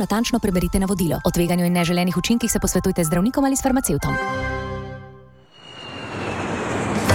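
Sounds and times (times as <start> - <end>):
speech: 0.0 - 4.6
airplane engine powering up: 5.4 - 7.1.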